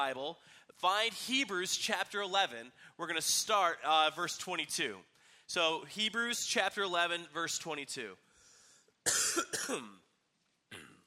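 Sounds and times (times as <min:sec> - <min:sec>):
speech: 0:00.0 - 0:08.3, 0:09.0 - 0:10.0
person coughing: 0:09.1 - 0:10.0, 0:10.7 - 0:11.0.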